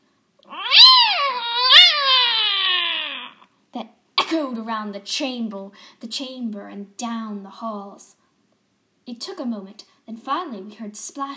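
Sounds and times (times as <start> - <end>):
cat yowling loudly in its den: 0.5 - 3.4
speech: 4.6 - 8.2, 9.1 - 11.3.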